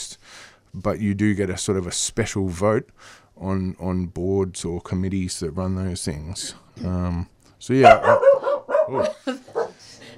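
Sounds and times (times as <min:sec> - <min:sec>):
speech: 0:00.7 - 0:08.3, 0:08.9 - 0:10.0
dog barking and yelping: 0:07.8 - 0:09.8
laughter: 0:08.9 - 0:10.1.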